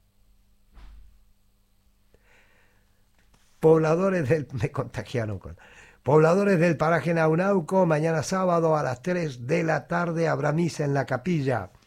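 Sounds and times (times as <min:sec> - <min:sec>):
door shutting with a soft thud: 0:00.7 - 0:01.3
speech: 0:03.6 - 0:11.8.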